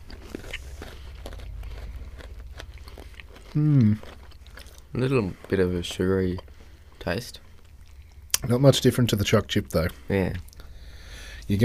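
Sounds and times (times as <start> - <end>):
biting and chewing a crisp biscuit with hundreds and thousands: 0.0 - 8.8
person humming: 3.5 - 4.0
speech: 3.6 - 4.2, 4.9 - 6.4, 7.0 - 7.4, 8.4 - 10.5, 11.5 - 11.6.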